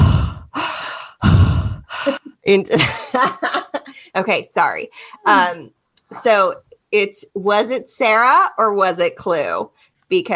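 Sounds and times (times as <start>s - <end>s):
voiced vocal sounds: 0.0s - 0.5s, 1.2s - 2.4s, 5.2s - 6.4s
person imitating heavy raspy breathing of a prank caller: 0.0s - 2.3s
speech: 2.1s - 3.6s, 4.2s - 10.3s
laughter: 2.7s - 4.1s.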